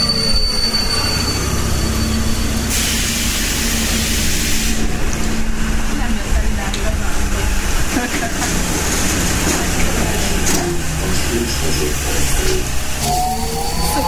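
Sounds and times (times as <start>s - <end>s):
metro train wheels squealing: 0.0s - 2.8s, 13.0s - 14.0s
low roar of metro train rails: 0.0s - 14.0s
metro train arriving: 0.0s - 14.0s.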